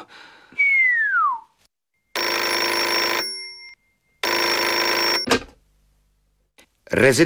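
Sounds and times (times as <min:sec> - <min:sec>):
brief falling whistle-like tone: 0:00.6 - 0:01.5
old-fashioned telephone bell ringing: 0:02.1 - 0:05.3
speech: 0:06.9 - 0:07.2.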